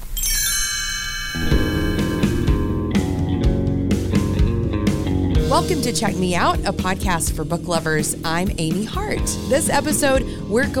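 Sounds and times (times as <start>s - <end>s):
bright shimmering chime as a page-turn cue: 0.0s - 2.8s
full band playing with steady drums: 1.4s - 10.7s
speech: 5.6s - 10.7s.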